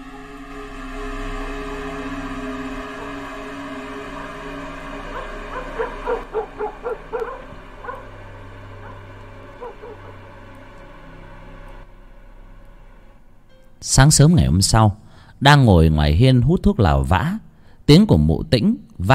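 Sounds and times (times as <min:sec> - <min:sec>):
steady low hum: 0:00.0 - 0:16.2
dogs barking and yapping at night in a small village: 0:04.5 - 0:11.0
speech: 0:14.0 - 0:19.1.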